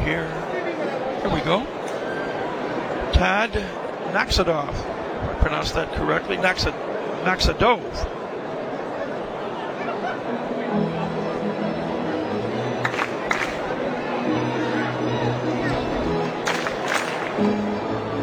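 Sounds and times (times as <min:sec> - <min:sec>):
baseball game crowd chatter and cheering: 0:00.0 - 0:18.2
speech: 0:00.1 - 0:00.4, 0:01.2 - 0:01.8, 0:03.2 - 0:08.2
bursts of clapping: 0:12.8 - 0:13.8, 0:16.2 - 0:17.7.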